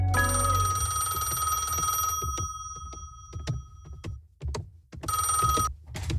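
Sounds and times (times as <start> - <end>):
old-fashioned telephone bell ringing: 0.2 - 3.9, 5.1 - 5.7
knocks: 1.2 - 6.1.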